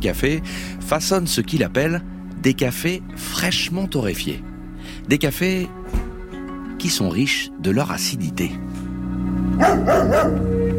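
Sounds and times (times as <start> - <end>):
speech: 0.0 - 5.8, 6.8 - 8.7, 9.6 - 10.6
dog barking: 9.6 - 10.6.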